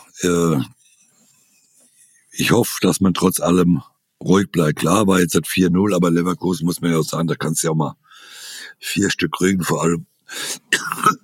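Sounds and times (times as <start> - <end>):
speech: 0.2 - 0.8, 2.4 - 11.2
person coughing harshly: 10.7 - 11.2.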